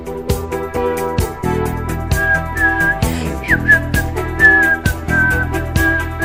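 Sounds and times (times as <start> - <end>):
upbeat backing track with a steady punchy beat: 0.0 - 6.2
person whistling a bright tune: 2.1 - 6.2.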